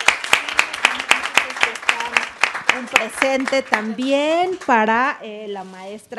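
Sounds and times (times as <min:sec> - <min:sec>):
audience applause: 0:00.0 - 0:03.9
speech: 0:02.8 - 0:06.1.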